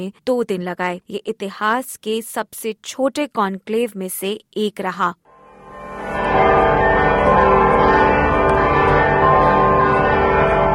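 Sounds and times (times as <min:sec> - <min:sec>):
speech: 0:00.0 - 0:05.2
church bells ringing in St. Peter's Square after a new pope is elected: 0:05.3 - 0:10.7.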